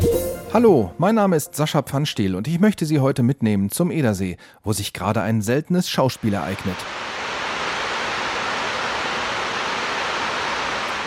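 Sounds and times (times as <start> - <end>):
speech: 0.5 - 7.2
roar of water rushing over dam spillway openings: 6.2 - 11.0.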